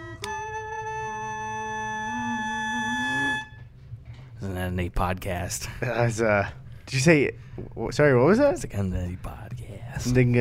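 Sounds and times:
humming through a plastic toy trumpet: 0:00.0 - 0:03.7
speech: 0:04.7 - 0:10.4.

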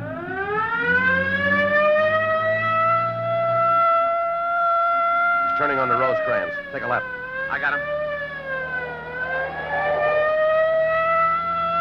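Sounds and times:
police car siren wailing during a car pursuit: 0:00.0 - 0:11.7
speech: 0:05.7 - 0:08.1
low engine-like rumble: 0:07.1 - 0:11.1.

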